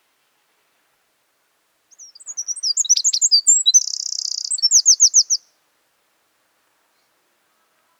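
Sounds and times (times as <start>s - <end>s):
Northern wren singing: 1.9s - 5.5s.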